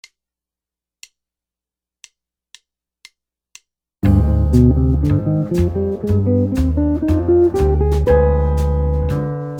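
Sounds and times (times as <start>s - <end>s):
guitar playing G Phrygian dominant scale: 4.0s - 9.5s.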